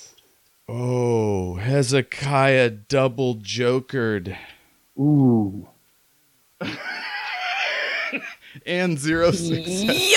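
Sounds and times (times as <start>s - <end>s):
speech: 0.7s - 5.7s, 6.6s - 6.9s, 8.1s - 10.1s
creature scream: 9.3s - 10.1s.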